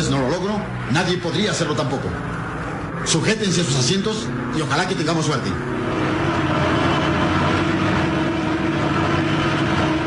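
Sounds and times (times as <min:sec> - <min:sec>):
light aircraft engine droning as the plane descends toward a jungle clearing: 0:00.0 - 0:10.0
speech: 0:00.5 - 0:02.4, 0:03.0 - 0:06.7.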